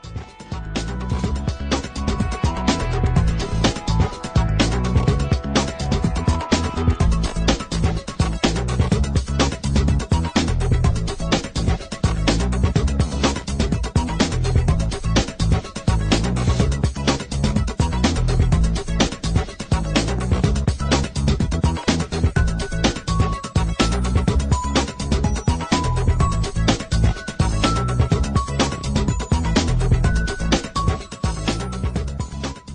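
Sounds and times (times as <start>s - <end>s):
hi tech contemporary music: 0.0s - 32.7s.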